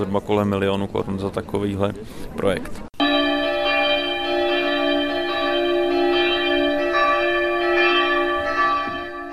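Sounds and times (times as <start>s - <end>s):
speech: 0.0s - 2.9s
church bells ringing together in harmony: 3.0s - 9.3s.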